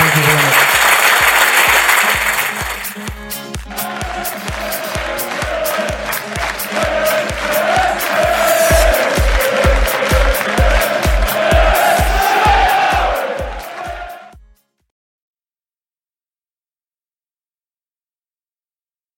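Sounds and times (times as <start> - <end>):
audience applause: 0.0 - 14.2
thumping beat: 0.7 - 14.6.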